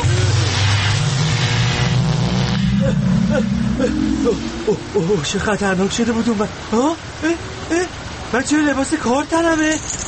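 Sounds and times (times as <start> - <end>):
sci-fi time machine whooshing roar: 0.0 - 6.0
low mechanical hum of sci-fi time machine effect: 0.0 - 7.2
speech: 3.8 - 7.5, 8.3 - 10.0.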